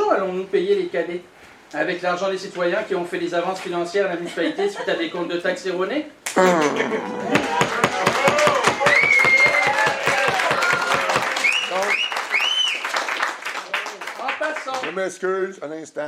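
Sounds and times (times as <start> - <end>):
speech: 0.2 - 8.5, 14.9 - 16.0
crowd in a large room clapping rhythmically: 6.3 - 15.1.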